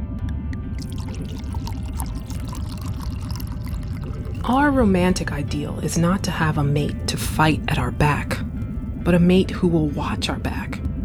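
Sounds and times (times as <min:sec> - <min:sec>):
wine glugging and splashing from a bottle into a glass: 0:00.7 - 0:07.9
speech: 0:04.5 - 0:10.8.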